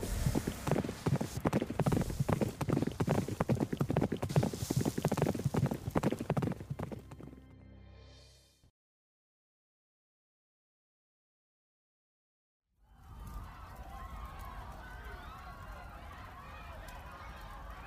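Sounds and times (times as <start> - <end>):
horse hooves clip-clopping at a brisk pace: 0.0 - 7.4.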